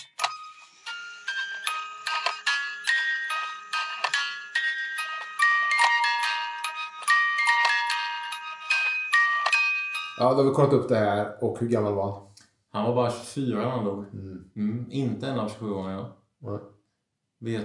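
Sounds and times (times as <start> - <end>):
small bell ringing rapidly: 2.0 - 10.2
speech: 10.2 - 16.7, 17.4 - 17.6.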